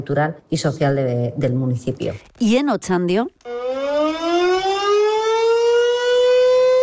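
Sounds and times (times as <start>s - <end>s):
speech: 0.0s - 3.6s
air raid siren wailing: 3.4s - 6.8s.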